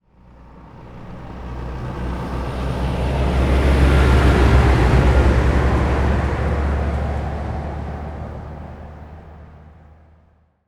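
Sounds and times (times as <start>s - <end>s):
truck passing by slowly: 0.0s - 10.6s.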